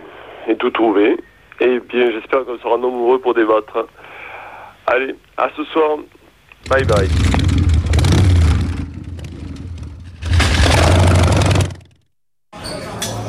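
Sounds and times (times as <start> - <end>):
speech: 0.6 - 4.0, 4.9 - 7.3
motorcycle engine struggling to start: 6.6 - 12.0
clattering: 7.1 - 11.9.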